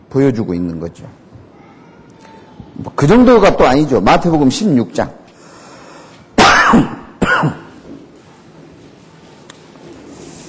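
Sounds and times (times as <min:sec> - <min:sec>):
speech: 0:00.1 - 0:01.2, 0:02.8 - 0:05.2, 0:06.7 - 0:07.6
person coughing: 0:06.4 - 0:07.8.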